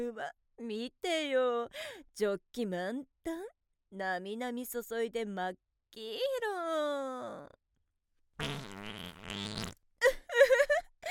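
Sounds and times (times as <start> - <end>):
speech: 0.0 - 7.6
brief vocal sounds: 8.4 - 9.8
long buzzy fart: 8.4 - 9.8.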